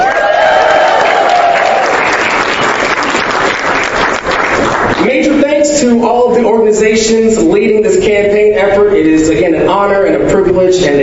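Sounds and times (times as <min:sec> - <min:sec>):
crowd clapping at a political campaign event: 0:00.0 - 0:05.4
speech: 0:05.8 - 0:11.0.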